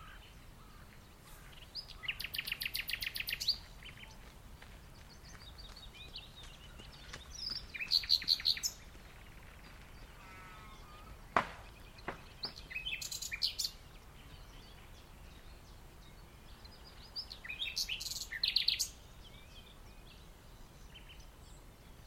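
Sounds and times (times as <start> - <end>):
common nightingale singing in the dunes: 0.0 - 22.0
people running and walking past in the dunes: 3.8 - 7.7.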